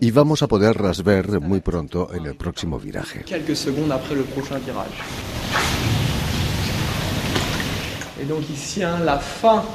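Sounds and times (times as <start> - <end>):
speech: 0.0 - 6.0, 8.2 - 9.7
water falling like rain inside a cave: 3.2 - 9.7.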